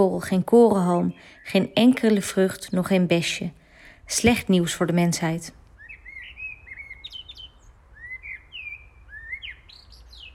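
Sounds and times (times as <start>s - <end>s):
birds chirping and warbling in a spring chorus: 0.0s - 3.0s, 3.7s - 10.3s
speech: 0.0s - 5.6s.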